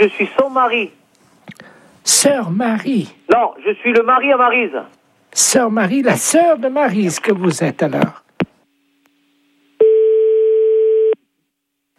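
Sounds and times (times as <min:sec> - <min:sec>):
speech: 0:00.0 - 0:08.2
telephone tone after a call was cut off: 0:09.8 - 0:11.2.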